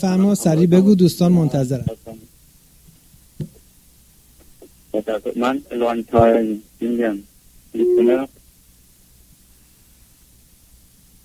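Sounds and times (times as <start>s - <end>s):
speech: 0.0s - 2.0s, 5.0s - 8.4s
steady electronic incoming call tone interrupting internet call: 7.8s - 8.2s.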